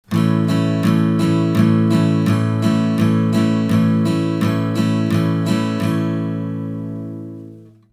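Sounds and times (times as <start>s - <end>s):
instrument strum: 0.1s - 7.9s.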